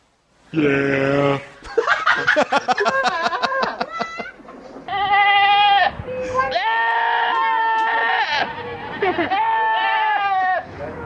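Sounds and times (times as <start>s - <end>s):
speech: 0.5s - 1.2s, 2.3s - 3.3s
laughter: 1.6s - 4.4s, 8.8s - 9.6s
goats bleating with human-sounding cries: 4.9s - 5.9s, 6.5s - 10.7s.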